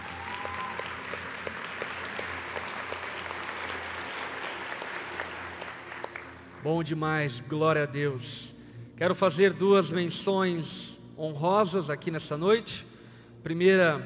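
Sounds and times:
large audience applauding to welcome visitors: 0.0 - 6.6
speech: 6.6 - 14.0.

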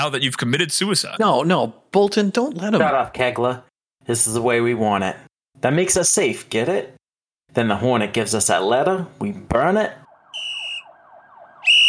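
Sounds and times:
speech: 0.0 - 10.0
police car sirens wailing and whooping: 10.0 - 11.8.

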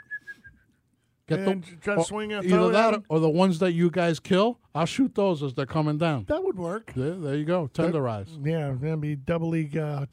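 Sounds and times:
person whistling short notes: 0.0 - 0.8
speech: 1.3 - 10.1.

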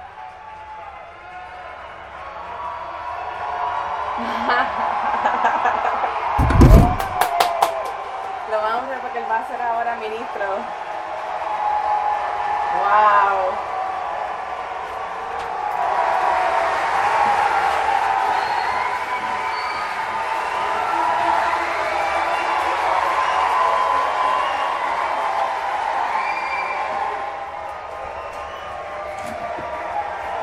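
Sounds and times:
audience applauding and cheering: 0.0 - 30.4
laughter: 4.2 - 6.4, 20.7 - 22.4
speech: 8.8 - 10.8, 12.8 - 13.7.

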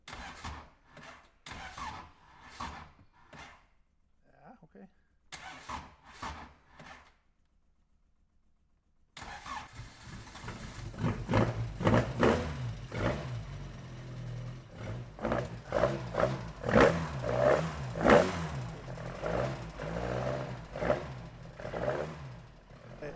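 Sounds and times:
hard-tuned car engine starting and revving: 0.1 - 2.9, 9.2 - 23.1
person talking: 23.0 - 23.1.

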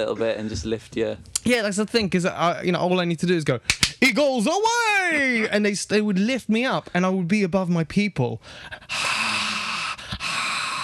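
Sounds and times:
speech: 0.0 - 9.1
loud airy breathing against the microphone: 8.4 - 10.8.

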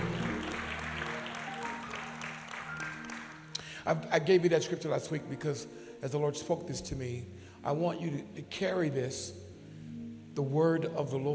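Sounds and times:
crowd clapping in praise: 0.0 - 3.7
sustained organ or keyboard chords: 0.0 - 11.3
speech: 3.8 - 9.4, 10.4 - 11.3.

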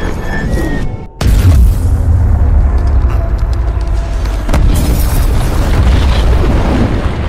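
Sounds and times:
heavy bomb explosion slamming into a warship's steel superstructure: 1.2 - 7.2.

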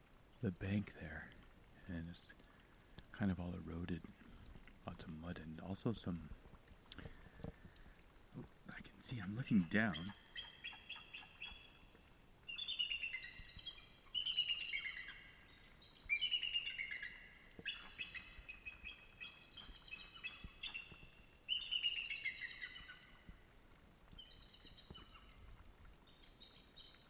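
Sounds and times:
speech: 0.4 - 2.4, 3.2 - 4.2, 4.8 - 6.4, 8.4 - 10.5
several eagles calling above a river in riparian forest in frozen conditions: 9.1 - 11.9, 12.5 - 23.2.

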